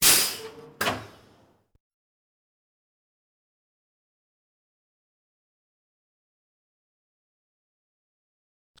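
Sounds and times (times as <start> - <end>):
roller coaster brake release: 0.0 - 1.4.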